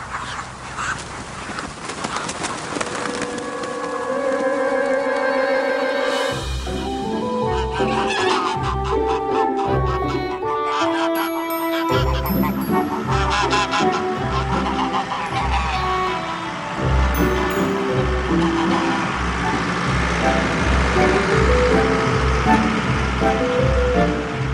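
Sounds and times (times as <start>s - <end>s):
ducks quacking and cooing: 0.0s - 3.3s, 7.1s - 21.2s
flock of ducks flapping wings: 0.8s - 4.5s
music: 4.2s - 24.5s
car driving with low engine and road rumble: 13.2s - 24.5s.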